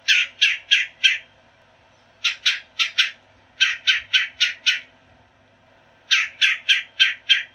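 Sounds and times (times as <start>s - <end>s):
red-bellied woodpecker: 0.0s - 1.3s, 2.2s - 4.9s, 6.1s - 7.5s.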